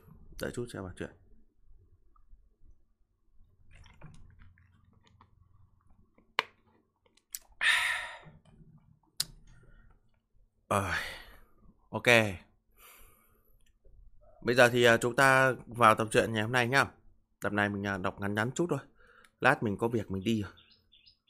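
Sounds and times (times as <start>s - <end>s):
speech: 0.4s - 1.2s, 10.7s - 11.1s, 12.0s - 12.4s, 14.4s - 20.6s
person sipping water: 3.7s - 6.1s, 7.2s - 10.0s
mouth clicks: 7.2s - 8.3s, 9.2s - 9.6s
short breathy exhales: 7.6s - 8.4s.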